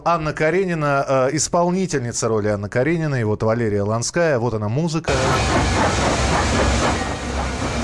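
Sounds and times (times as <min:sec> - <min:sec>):
speech: 0:00.0 - 0:06.9
steam train hissing: 0:05.1 - 0:07.8.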